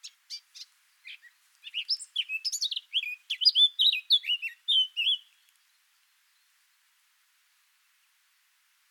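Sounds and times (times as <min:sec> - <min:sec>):
Eurasian blackcap (Sylvia atricapilla) singing: 0:00.0 - 0:06.5.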